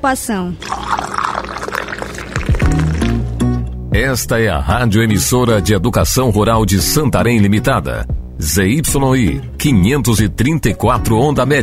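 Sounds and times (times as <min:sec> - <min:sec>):
speech: 0:00.0 - 0:00.9, 0:03.9 - 0:11.6
water pouring into a glass: 0:00.6 - 0:03.4.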